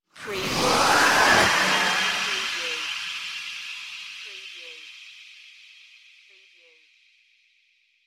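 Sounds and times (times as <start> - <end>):
hollow space flyby: 0.2 - 4.2.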